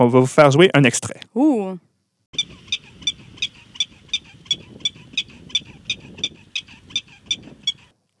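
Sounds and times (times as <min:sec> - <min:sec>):
speech: 0:00.0 - 0:02.5
Colorado prairie dog chirping alarm calls in its natural habitat: 0:02.4 - 0:08.0.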